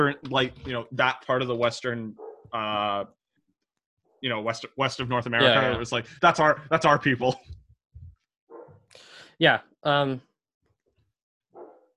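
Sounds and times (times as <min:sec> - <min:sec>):
speech: 0:00.0 - 0:03.2, 0:04.2 - 0:07.6, 0:08.9 - 0:10.3
dog barking: 0:08.5 - 0:08.8, 0:11.6 - 0:11.9.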